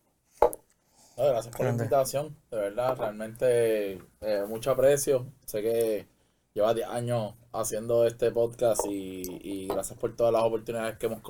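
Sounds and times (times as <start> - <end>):
speech: 1.2 - 11.2
glasses clinking in a toast: 9.7 - 10.0.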